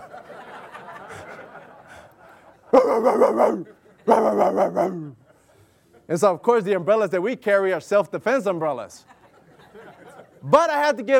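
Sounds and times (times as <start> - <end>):
laughter: 0.0 - 6.1, 8.9 - 10.6
pit bull mix dog barking: 2.8 - 5.2
speech: 2.8 - 5.2, 6.1 - 9.2, 10.4 - 11.1.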